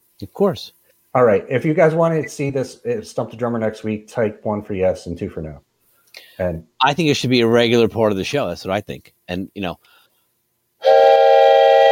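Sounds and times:
speech: 0:00.2 - 0:05.7, 0:06.4 - 0:10.0
loud steady whistle blast: 0:10.8 - 0:11.8.

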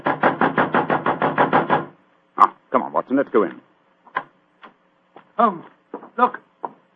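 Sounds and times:
loud knocking on a theater dressing room door: 0:00.0 - 0:02.0
speech: 0:03.1 - 0:03.6, 0:05.4 - 0:06.4.

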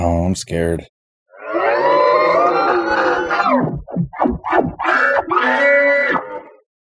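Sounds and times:
speech: 0:00.3 - 0:00.9
creature screaming sound effect: 0:01.3 - 0:06.7.

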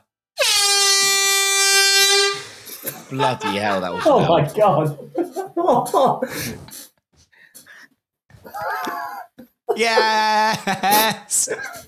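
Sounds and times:
air horn blast: 0:00.4 - 0:02.6
laughter: 0:02.8 - 0:06.6, 0:08.5 - 0:11.8
speech: 0:03.1 - 0:06.8, 0:09.8 - 0:11.8.

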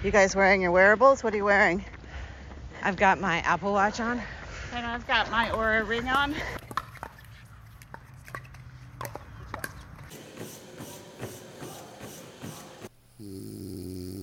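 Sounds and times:
speech: 0:00.0 - 0:01.9, 0:02.8 - 0:06.7
loud snoring with a rough buzzing rasp: 0:13.2 - 0:14.2.

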